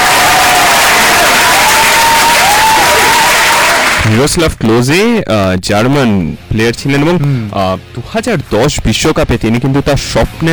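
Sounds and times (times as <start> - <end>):
faint cheering: 0.0 - 4.2
crowd applauding loudly: 0.0 - 4.3
speech: 4.1 - 10.5.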